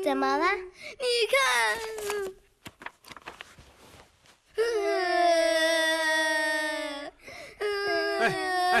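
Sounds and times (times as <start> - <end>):
speech: 0.1 - 2.4
two children crying: 4.6 - 8.7.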